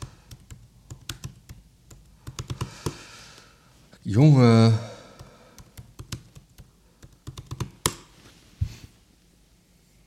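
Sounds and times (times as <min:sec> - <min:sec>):
laptop keyboard typing: 0:00.0 - 0:03.0, 0:05.1 - 0:08.1
speech: 0:04.1 - 0:04.9.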